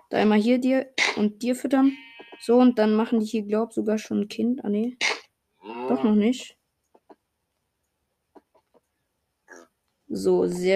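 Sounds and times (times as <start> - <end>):
speech: 0.1 - 5.1, 5.9 - 6.6, 10.1 - 10.7
pigs grunting: 5.6 - 6.2.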